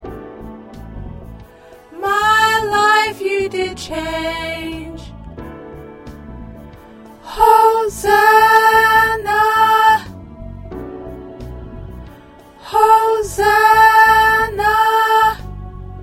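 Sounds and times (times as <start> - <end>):
alto choir parts singing: 1.8 - 5.1, 7.2 - 10.2, 12.4 - 16.0.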